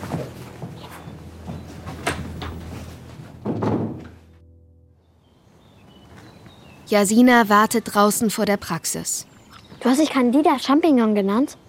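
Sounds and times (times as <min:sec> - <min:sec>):
door pushed shut with a solid thud: 0:01.9 - 0:02.7, 0:03.4 - 0:04.3
speech: 0:06.9 - 0:11.6.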